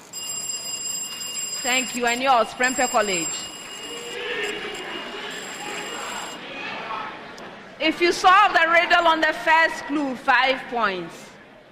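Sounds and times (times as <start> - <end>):
quiz contestant answer bell ringing: 0.0 - 6.4
speech: 1.6 - 3.6, 7.8 - 11.2.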